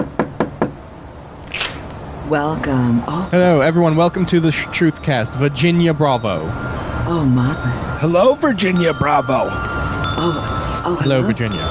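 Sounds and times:
knocking on a door: 0.0 - 0.8
speech: 2.3 - 11.6.

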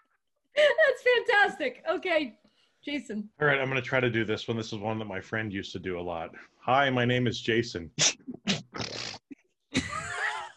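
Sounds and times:
speech: 1.0 - 8.3
person imitating pig grunts and snorts with the voice: 8.0 - 9.3.

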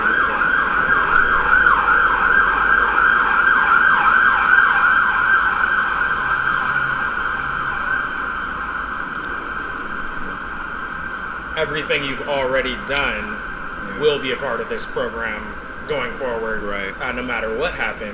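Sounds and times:
ambulance siren yelping in rising and falling sweeps: 0.0 - 12.3
steady traffic rumble: 0.0 - 18.1
speech: 11.8 - 13.4, 14.0 - 18.1.

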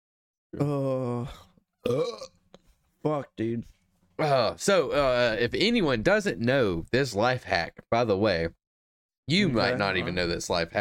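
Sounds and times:
speech: 0.5 - 2.4, 3.0 - 8.6, 9.3 - 10.7
long deep rumbling burp: 0.6 - 2.3.

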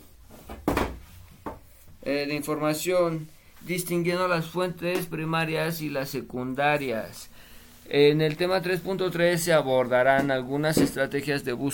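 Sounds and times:
wooden chair and stool knocking and scraping as they are moved: 0.4 - 1.6
speech: 2.1 - 11.7.

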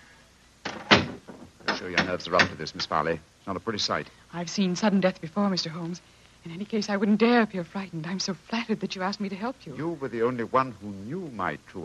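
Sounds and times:
cell door swinging shut with latch and thud: 0.6 - 2.7
speech: 1.8 - 11.8.

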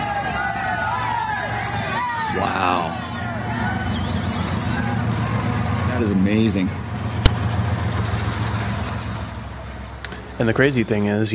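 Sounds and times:
raised shouts from the crowd: 0.0 - 5.6
large crowd roaring and cheering: 0.0 - 11.1
speech: 2.3 - 3.0, 6.0 - 6.8, 10.4 - 11.3.

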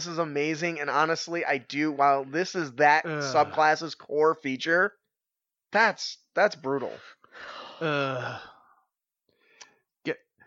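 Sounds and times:
speech: 0.0 - 5.0, 5.7 - 8.5, 10.0 - 10.2
person groaning: 3.0 - 3.6, 7.6 - 8.6
breathy sounds: 6.9 - 9.8.

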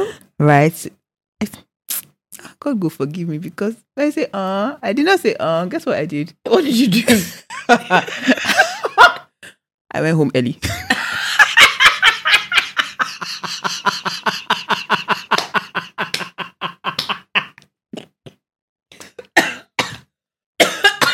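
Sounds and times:
speech: 0.4 - 1.7, 2.5 - 8.6, 9.9 - 10.9
laughter: 7.5 - 9.2, 10.6 - 17.6
person coughing: 19.0 - 21.1.

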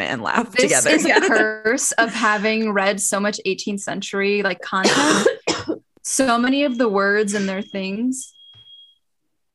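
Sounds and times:
speech: 0.0 - 5.4, 6.1 - 8.4
high-pitched electronic alarm beep: 1.2 - 1.8, 6.4 - 9.1.

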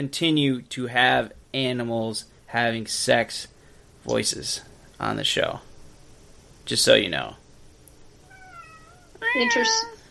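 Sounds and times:
speech: 0.0 - 5.7, 6.7 - 7.4, 9.3 - 9.9
cat meowing: 8.2 - 10.0.

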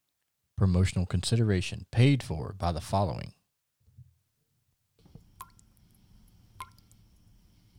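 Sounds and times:
speech: 0.6 - 3.4
water dripping from a leaky roof: 5.0 - 7.7.

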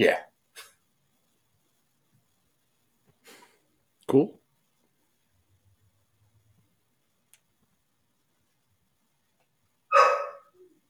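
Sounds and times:
speech: 0.0 - 0.3, 4.1 - 4.4
dog barking: 9.9 - 10.6.

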